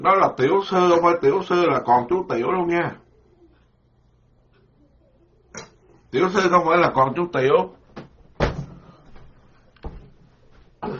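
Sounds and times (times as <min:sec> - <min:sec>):
speech: 0:00.0 - 0:03.0, 0:06.1 - 0:07.8
wooden door being opened with clunks: 0:08.0 - 0:08.8.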